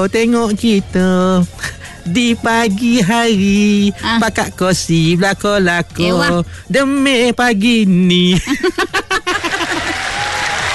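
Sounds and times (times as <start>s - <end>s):
speech: 0.0s - 9.0s
laughter: 8.3s - 10.7s
audience applause: 9.4s - 10.7s.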